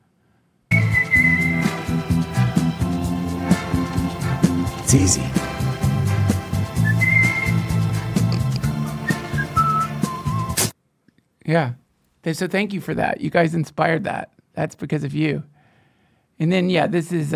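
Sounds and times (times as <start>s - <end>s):
person whistling a tune: 0.7s - 1.8s, 6.8s - 7.7s, 8.8s - 10.6s
music: 0.7s - 10.7s
speech: 4.9s - 5.4s, 11.5s - 15.5s, 16.4s - 17.3s.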